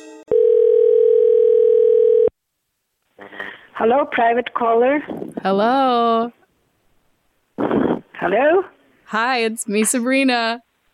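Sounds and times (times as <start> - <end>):
telephone dial tone while a call is being placed: 0.3 - 2.3
speech: 3.8 - 6.4, 8.2 - 10.7.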